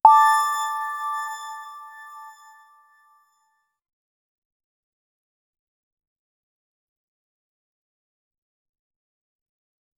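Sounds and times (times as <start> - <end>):
game item pickup sound for collectibles: 0.0 - 2.0.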